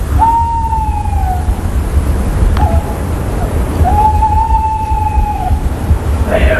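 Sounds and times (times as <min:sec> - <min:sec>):
bird calling with whistled notes: 0:00.0 - 0:01.7, 0:02.6 - 0:05.8
constant low rumble: 0:00.0 - 0:06.5
sharp bird chirp: 0:00.0 - 0:06.5.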